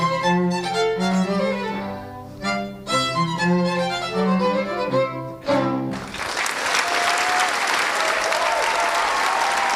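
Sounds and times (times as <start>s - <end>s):
live instrumental music: 0.0s - 7.0s
large audience applause and cheering: 5.9s - 9.7s.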